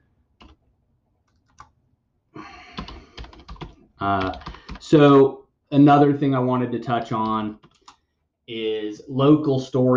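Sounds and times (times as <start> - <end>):
computer keyboard typing: 0.4 - 0.6, 1.2 - 1.8, 2.7 - 5.0, 7.1 - 8.0
speech: 4.0 - 7.6, 8.5 - 9.9.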